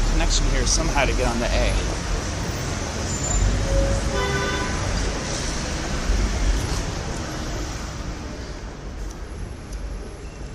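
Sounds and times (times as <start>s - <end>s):
engines rumbling: 0.0s - 10.5s
traffic roar at a bus terminal: 0.0s - 10.5s
speech: 0.3s - 2.1s
horn honk: 3.7s - 4.9s.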